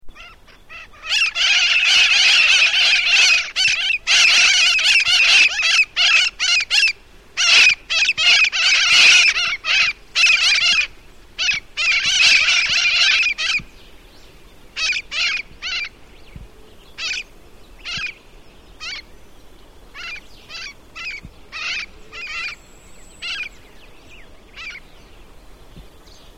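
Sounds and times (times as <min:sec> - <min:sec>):
Mitred Parakeet Aratinga mitrata calls: 0:00.1 - 0:13.7, 0:14.8 - 0:16.0, 0:17.0 - 0:18.2, 0:18.8 - 0:19.1, 0:19.9 - 0:23.6, 0:24.5 - 0:24.9.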